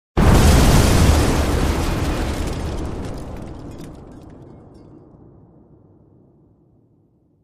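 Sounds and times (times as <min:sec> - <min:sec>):
explosion debris of metal and glass: 0:00.8 - 0:05.1.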